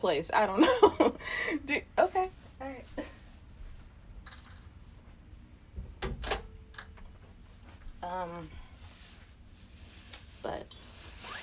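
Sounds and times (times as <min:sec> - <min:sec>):
speech: 0:00.0 - 0:03.2, 0:08.1 - 0:08.6
door pushed shut with sharp knocks and a dull thud: 0:05.8 - 0:07.0.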